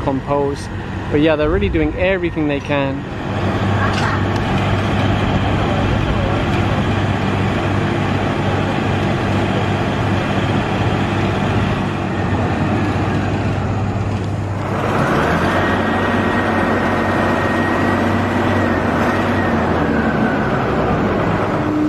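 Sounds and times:
backhoe diesel engine running while pulling up water lilies: 0.0s - 21.8s
speech: 0.1s - 3.6s.

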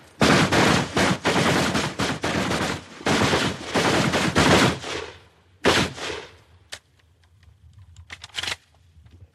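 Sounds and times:
rapid gunfire in a standing speed drill at a large target: 0.2s - 6.3s.

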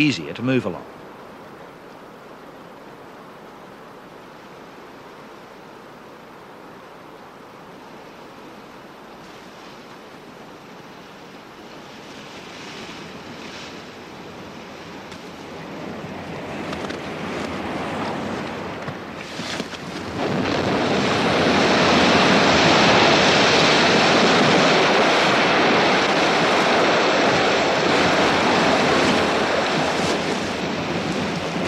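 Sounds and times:
speech: 0.0s - 1.0s
wind rushing across the microphone: 15.4s - 31.6s
waves breaking on a rocky shoreline on the southern edge of Alaska: 15.6s - 31.6s.

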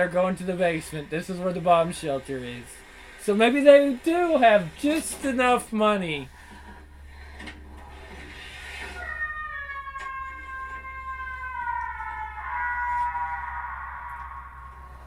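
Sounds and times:
speech: 0.0s - 6.4s
low steady hum: 0.0s - 15.0s
door creaking open in a movie: 7.2s - 15.0s.

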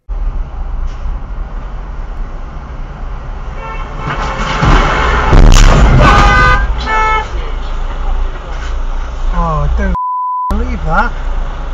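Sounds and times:
road traffic noise: 0.0s - 11.7s
car horn honking: 3.5s - 7.4s
car collision: 3.6s - 8.5s.

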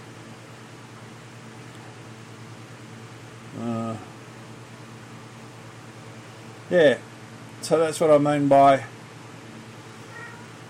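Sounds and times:
low hum: 0.0s - 10.6s
speech: 3.6s - 4.1s, 6.7s - 7.0s, 7.7s - 9.0s
cat meowing: 10.0s - 10.6s.

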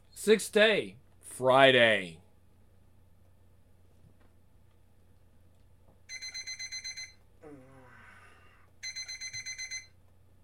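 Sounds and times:
speech: 0.2s - 2.2s
alarm clock with shrill electronic beeps: 6.1s - 7.2s, 8.8s - 9.9s
low groaning voice: 7.4s - 8.7s.

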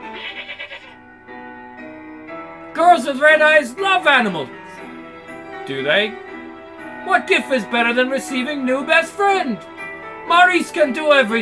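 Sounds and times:
goat bleating: 0.0s - 1.0s
speech: 2.8s - 4.6s, 5.7s - 6.2s, 7.0s - 9.7s, 10.3s - 11.3s.

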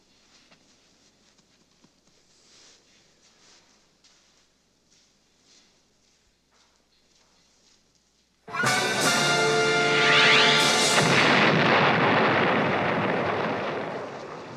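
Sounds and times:
huge explosion blowing the roof off an institute building: 8.5s - 14.5s
crackling rumble of debris and flames from a burning building: 8.6s - 14.5s.

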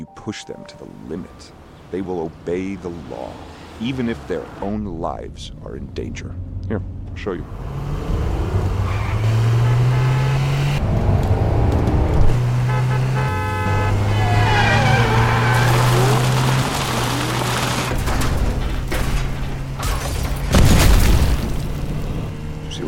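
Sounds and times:
speech: 0.2s - 8.0s
car tires screeching as the vehicle swerves: 1.4s - 5.0s, 6.2s - 20.5s
car engine droning: 1.4s - 20.5s, 21.3s - 22.8s
car horn honking: 9.3s - 10.7s, 12.5s - 15.9s
car crashing into a ditch: 15.3s - 22.3s.

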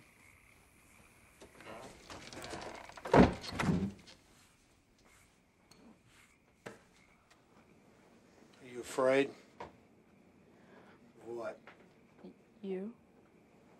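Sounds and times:
shed door shutting with a solid thud: 3.0s - 4.0s
speech: 9.0s - 9.4s.

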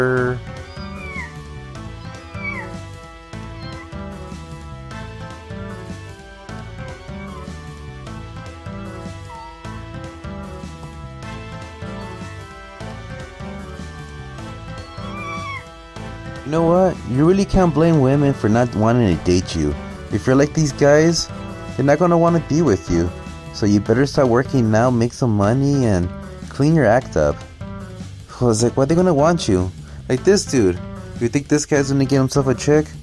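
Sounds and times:
man imitating a cat with drawn-out wavering meows: 0.0s - 1.4s, 2.0s - 2.8s, 3.4s - 4.0s, 7.0s - 7.6s, 9.1s - 9.8s, 11.8s - 12.5s, 14.8s - 15.7s
speech: 16.5s - 27.5s, 28.4s - 33.0s.

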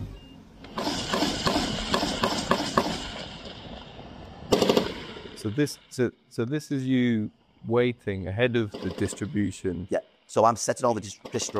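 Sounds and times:
machine gun fire: 0.7s - 3.7s, 4.5s - 5.4s, 8.7s - 9.4s
noisy background: 0.8s - 11.5s
speech: 5.4s - 11.5s.

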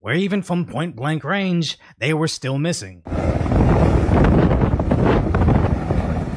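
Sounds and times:
speech: 0.0s - 5.2s
strong wind buffeting a microphone: 3.1s - 6.3s.

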